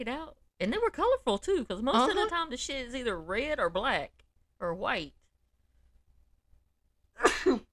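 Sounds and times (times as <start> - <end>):
speech: 0.0 - 5.2
sharp breathy sneeze: 7.2 - 7.7.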